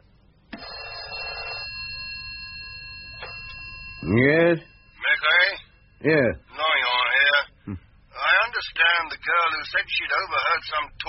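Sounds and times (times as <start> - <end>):
old-fashioned telephone bell ringing: 0.5 - 7.3
speech: 4.0 - 4.7, 6.0 - 6.6, 8.6 - 11.0.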